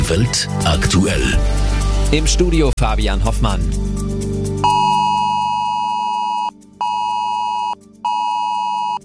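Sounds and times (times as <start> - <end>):
speech: 0.1 - 4.1
mobile phone emergency alert tone during nationwide warning day test in Germany: 4.6 - 9.0.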